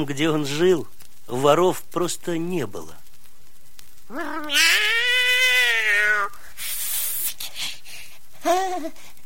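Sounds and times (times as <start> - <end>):
speech: 0.0 - 3.0, 4.1 - 5.0, 8.4 - 9.1
breathy hissing rush of noise: 0.0 - 9.2
cat meowing: 4.1 - 6.4.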